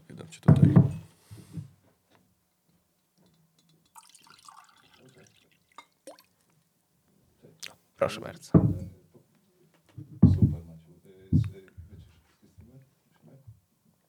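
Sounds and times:
speech: 0.2 - 1.7, 8.0 - 8.9
water trickling and splashing into a glass: 3.6 - 6.6
glass clinking and tapping as it is handled: 3.9 - 5.1.

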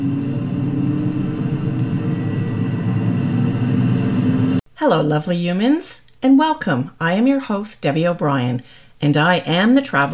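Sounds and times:
airplane engines rumbling during takeoff: 0.0 - 4.6
speech: 4.8 - 10.1.

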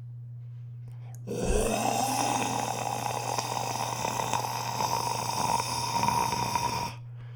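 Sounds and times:
voice imitating dragon breathing fire: 1.3 - 7.0.

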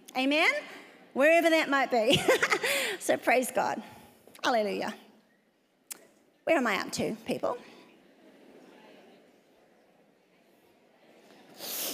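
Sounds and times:
quiet noise: 0.0 - 11.9
speech: 0.2 - 5.0, 6.4 - 7.7
sharp sniff through the nose: 11.6 - 11.9.

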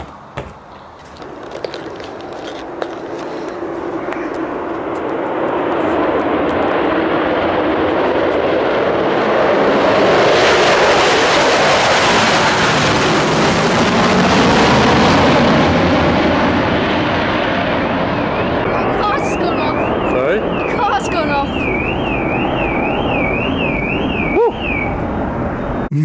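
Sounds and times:
Concorde jet engines roaring at takeoff: 0.2 - 25.9.

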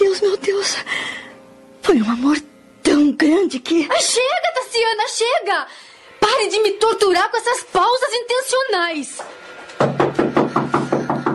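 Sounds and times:
speech: 1.9 - 10.0
woman knocking on a door: 9.8 - 11.3.

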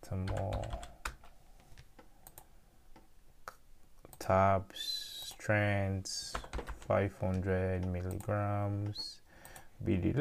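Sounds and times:
speech: 0.0 - 0.9, 4.3 - 4.9, 5.5 - 9.2, 9.8 - 10.1
typing on a computer keyboard: 0.2 - 1.3, 6.3 - 6.9.

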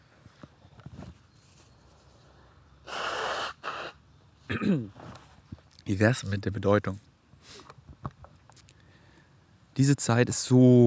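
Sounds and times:
person blowing nose: 2.8 - 4.0
speech: 4.5 - 5.0, 5.9 - 7.6, 9.8 - 10.8.

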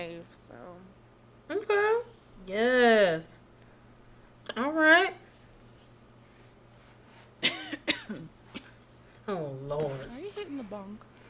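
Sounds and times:
speech: 0.0 - 3.4, 9.3 - 11.1
person coughing: 7.4 - 8.8.

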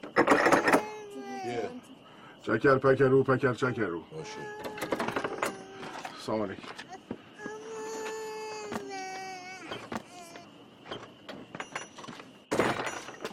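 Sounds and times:
clatters and thumps: 0.0 - 0.9, 4.6 - 7.6, 9.7 - 13.3
baby crying: 0.3 - 1.9, 3.6 - 6.2, 6.8 - 10.6
speech: 2.4 - 4.7, 6.3 - 6.9.

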